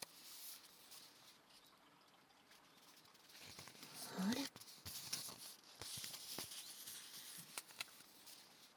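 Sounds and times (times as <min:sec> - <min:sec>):
paper and black tea bag wrapper crinkling as handled: 0:00.0 - 0:01.4, 0:02.7 - 0:08.7.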